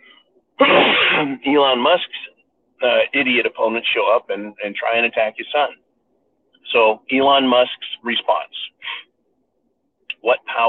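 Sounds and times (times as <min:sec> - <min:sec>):
loud sneeze: 0:00.6 - 0:01.4
speech: 0:00.6 - 0:05.8, 0:06.7 - 0:09.0, 0:10.2 - 0:10.6.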